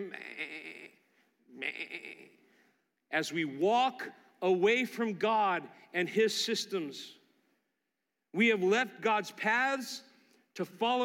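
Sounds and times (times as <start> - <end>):
sheep bleating: 0.0 - 2.4
speech: 3.2 - 7.2, 8.4 - 11.0.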